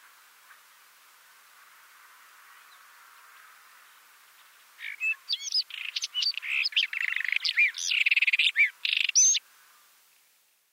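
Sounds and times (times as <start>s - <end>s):
White-throated robin song of chirps, slurred whistles and buzzy trill: 3.8s - 9.4s.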